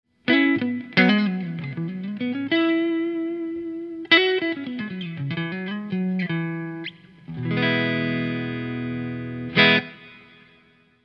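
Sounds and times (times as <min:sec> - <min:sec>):
Stratocaster electric guitar on delta neck: 0:00.1 - 0:11.0.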